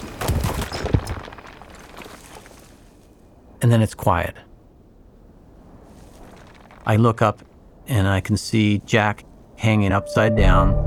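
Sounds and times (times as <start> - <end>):
rockfall with climbing gear crashing as a climber falls: 0.0 - 2.6
speech: 3.6 - 4.5, 6.9 - 10.8.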